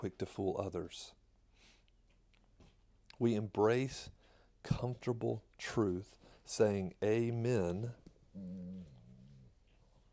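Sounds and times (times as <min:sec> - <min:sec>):
speech: 0:00.0 - 0:01.2, 0:03.2 - 0:09.0
dog whimpering: 0:08.3 - 0:09.6.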